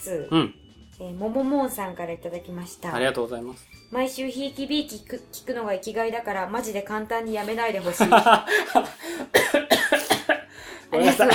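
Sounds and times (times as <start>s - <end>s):
speech: 0.0s - 9.7s, 10.9s - 11.3s
laughter: 7.8s - 9.7s, 10.3s - 11.3s
person coughing after choking: 8.6s - 10.4s, 11.0s - 11.3s.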